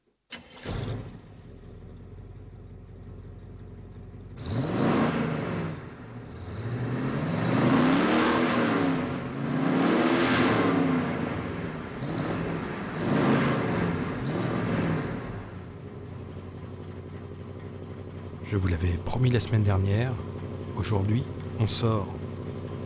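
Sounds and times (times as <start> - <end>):
car engine idling, revving and accelerating: 0.3 - 22.8
speech: 18.5 - 22.2.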